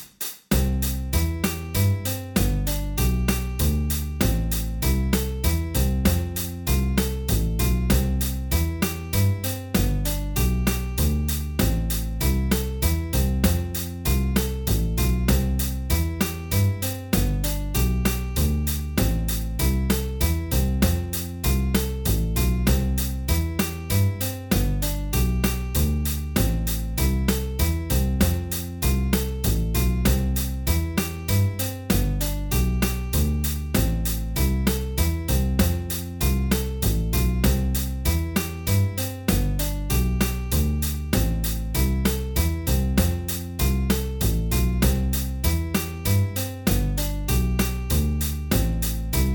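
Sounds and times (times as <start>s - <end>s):
three versus two backing track: 0.5s - 49.3s.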